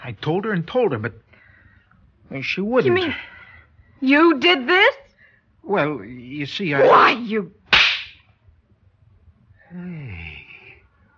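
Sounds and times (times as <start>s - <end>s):
speech: 0.1s - 1.3s, 2.3s - 3.3s, 4.0s - 5.0s, 5.6s - 7.6s
startled vocal exclamation: 6.8s - 7.3s
hand slapping a face: 7.7s - 8.2s.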